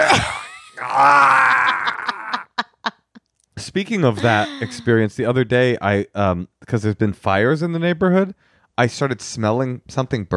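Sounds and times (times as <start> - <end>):
laughter: 0.0 - 3.2, 4.2 - 4.9
voice imitating a strained effortful groan: 0.8 - 2.4, 4.2 - 4.8
speech: 1.0 - 1.4, 3.7 - 10.3.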